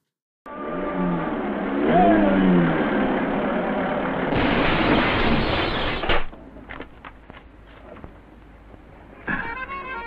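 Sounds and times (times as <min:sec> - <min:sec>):
car engine humming and revving arriving in a small country village: 0:00.5 - 0:05.5
road accident crash: 0:01.2 - 0:06.4.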